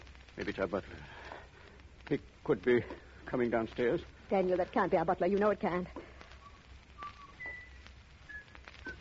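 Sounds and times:
hiss: 0.0s - 8.9s
speech: 0.4s - 1.2s, 2.1s - 6.1s
killer whistling a slow tune: 6.4s - 8.9s.

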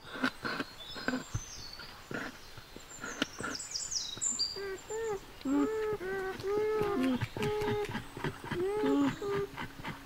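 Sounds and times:
beavers giving whiny nasal calls: 0.0s - 10.0s.

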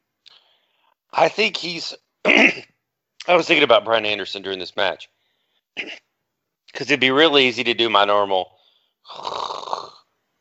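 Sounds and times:
speech: 1.2s - 2.7s, 3.3s - 5.2s, 5.8s - 6.1s, 6.8s - 9.4s
human voice imitating snoring: 9.0s - 10.1s.

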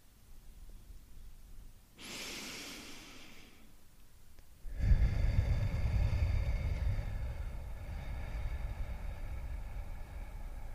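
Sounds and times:
deep breath in through the nose, out through the mouth: 2.0s - 3.8s, 4.6s - 10.7s.

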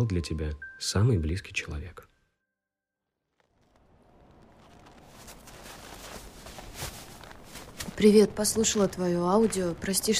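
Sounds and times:
speech: 0.0s - 2.1s, 8.0s - 10.1s
footsteps of a person walking through snow in a forest near a home: 3.3s - 10.1s.

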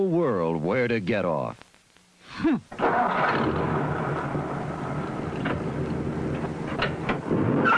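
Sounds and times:
speech: 0.0s - 1.6s, 2.4s - 4.0s
International Scout V8 engine starting and revving: 2.8s - 7.7s.

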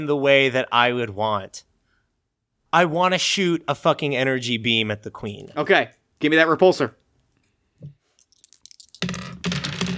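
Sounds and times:
speech: 0.0s - 1.7s, 2.7s - 7.0s
small glow-in-the-dark dice clattering across a hard surface: 8.2s - 9.9s.

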